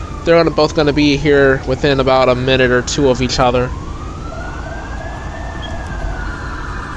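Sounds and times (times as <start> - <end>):
fire truck siren wailing: 0.0 - 6.9
heavy low traffic rumble: 0.0 - 6.9
speech: 0.2 - 3.8.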